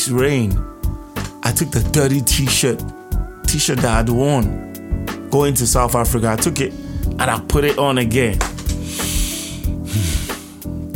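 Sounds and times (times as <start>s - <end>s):
speech: 0.0s - 0.8s, 1.5s - 9.0s
voice imitating hiss of perfume spray: 8.8s - 10.6s.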